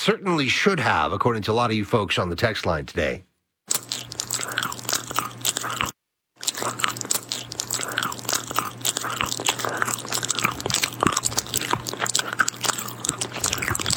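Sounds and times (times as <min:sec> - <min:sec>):
speech: 0:00.0 - 0:04.0
loud chewing and crunching: 0:03.7 - 0:13.9.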